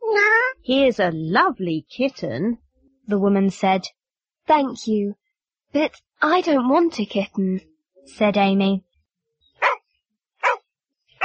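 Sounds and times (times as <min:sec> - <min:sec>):
speech: 0:00.7 - 0:08.9
dog barking: 0:09.6 - 0:09.8, 0:10.4 - 0:10.6.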